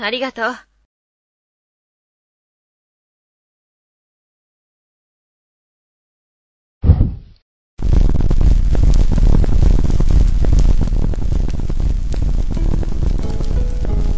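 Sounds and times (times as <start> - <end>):
speech: 0.0 - 0.7
fire catching whoosh: 6.8 - 14.1
flames crackling and popping in a fireplace: 7.8 - 14.1.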